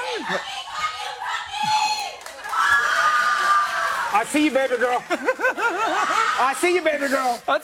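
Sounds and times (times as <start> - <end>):
shrill drawn-out shout from an audience member: 0.0 - 4.3
speech: 0.2 - 0.7, 4.1 - 7.6
laughter: 2.4 - 7.4.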